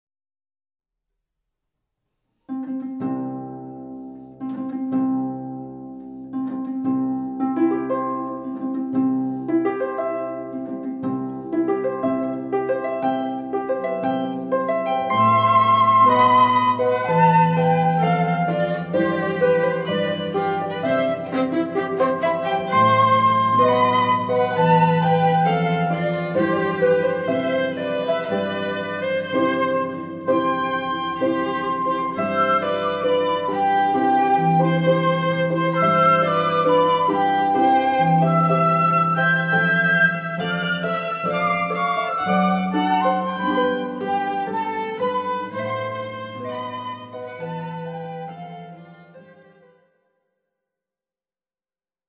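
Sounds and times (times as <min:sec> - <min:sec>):
harp: 0:02.4 - 0:49.9
violin: 0:02.8 - 0:50.0
flute: 0:09.2 - 0:49.7.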